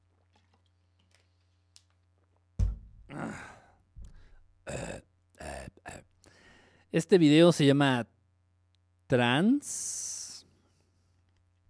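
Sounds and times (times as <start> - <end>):
thump: 2.6 - 3.1
breathy exhales: 3.1 - 4.4
speech: 6.9 - 8.1, 9.1 - 10.1.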